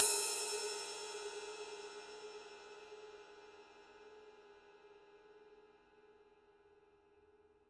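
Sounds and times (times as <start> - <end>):
20-inch Paiste 2002 ride cymbal body hit: 0.0 - 3.1.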